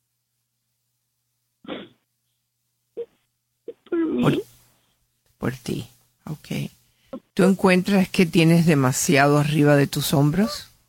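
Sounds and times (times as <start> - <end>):
person crying: 3.7 - 4.4
speech: 4.2 - 4.4, 5.4 - 6.8, 7.4 - 10.7.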